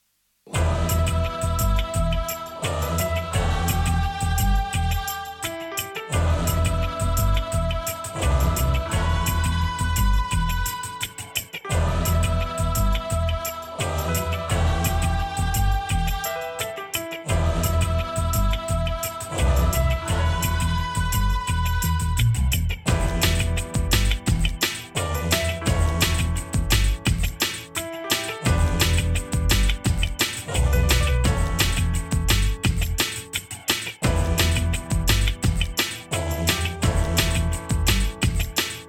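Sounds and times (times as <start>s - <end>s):
gospel drum and bass music: 0.5s - 38.8s.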